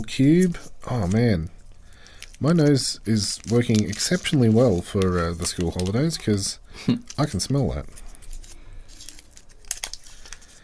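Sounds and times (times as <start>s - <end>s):
speech: 0.0s - 1.6s, 2.4s - 8.0s
thin white wax paper gum wrapper crinkling while unwrapped: 0.3s - 10.6s
sharper crackles of wax paper gum wrapper: 2.1s - 10.6s.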